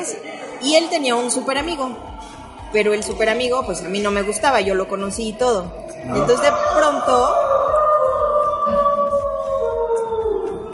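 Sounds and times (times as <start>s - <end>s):
speech: 0.0s - 7.8s
coyote-like howl on the rooftop of a colonial building: 6.0s - 10.7s.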